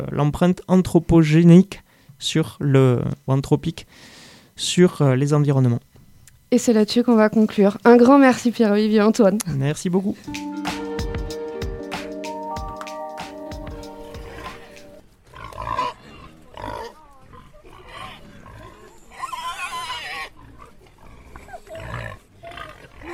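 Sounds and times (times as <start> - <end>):
speech: 0.0 - 5.9, 6.5 - 10.5
music: 10.2 - 15.0
wild boar grunting and snorting: 15.3 - 23.1.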